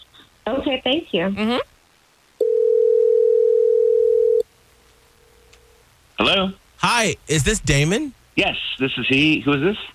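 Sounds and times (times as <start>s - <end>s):
speech: 0.7s - 1.7s, 6.2s - 9.9s
long steady telephone ring tone: 2.4s - 4.4s
brief voice: 6.8s - 8.1s.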